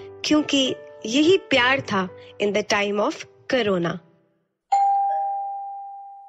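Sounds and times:
speech: 0.3s - 4.1s
home doorbell chiming: 4.7s - 6.2s.

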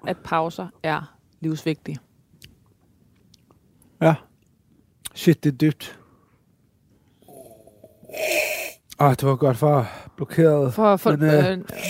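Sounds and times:
speech: 0.0s - 2.1s, 4.0s - 4.3s, 5.2s - 6.0s, 8.1s - 11.8s
loud nasal snort sniffing something up the nose: 7.3s - 8.8s, 11.7s - 11.8s.

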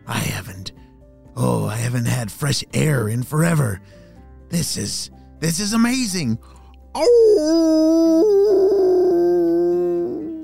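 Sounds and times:
speech: 1.4s - 8.6s
giant dog howling: 7.0s - 10.4s.

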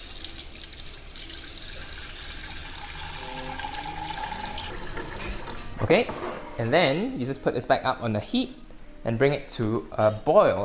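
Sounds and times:
water running from a tap into a pan: 0.0s - 5.3s
speech: 5.8s - 10.6s.

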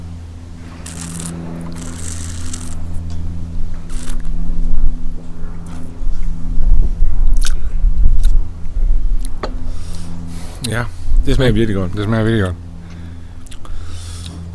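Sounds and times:
constant low hum: 0.0s - 14.5s
loud chewing of crunchy food: 0.6s - 4.3s, 7.3s - 8.4s, 13.4s - 14.5s
speech: 10.7s - 12.7s.

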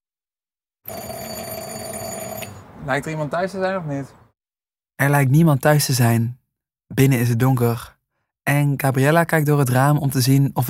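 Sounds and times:
electric doorbell ringing at a house on the outskirts of a village: 0.9s - 2.6s
speech: 2.8s - 4.2s, 5.0s - 10.6s.

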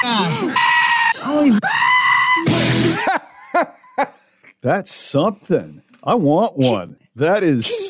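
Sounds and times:
speech: 0.0s - 2.0s, 3.0s - 7.8s
screaming hairy armadillo defensive scream: 0.0s - 2.8s.

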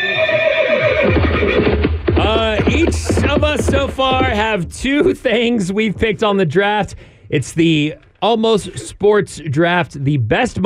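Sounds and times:
horse neighing: 0.0s - 3.5s
speech: 3.6s - 10.6s.

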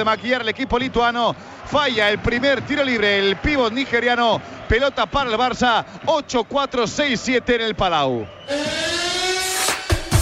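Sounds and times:
speech: 0.0s - 9.0s
basketball arena siren at a game: 8.5s - 10.1s.

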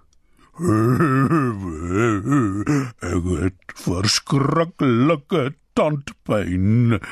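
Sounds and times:
speech: 0.6s - 2.4s, 4.3s - 7.1s
storyteller imitating a crying hippo: 0.6s - 3.2s.

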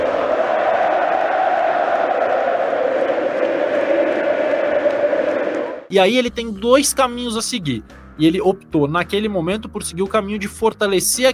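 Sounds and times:
large stadium crowd chanting a tribute in unison: 0.0s - 5.9s
speech: 5.9s - 11.3s.

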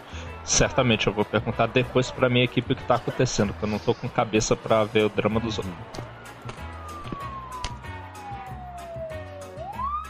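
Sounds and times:
speech: 0.5s - 6.2s
ambulance siren wailing: 3.5s - 10.0s
pulsing low rhythmic thump: 5.8s - 7.8s.

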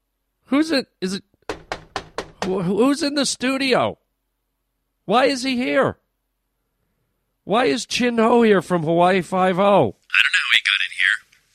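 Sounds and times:
speech: 0.5s - 1.3s, 2.4s - 4.0s, 5.1s - 6.0s, 7.4s - 10.3s
knocking on a door: 1.5s - 2.9s.

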